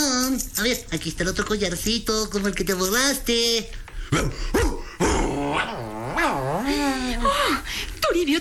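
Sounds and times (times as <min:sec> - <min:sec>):
speech: 0:00.4 - 0:04.8, 0:05.6 - 0:08.4
dog growling and whining: 0:04.8 - 0:07.4.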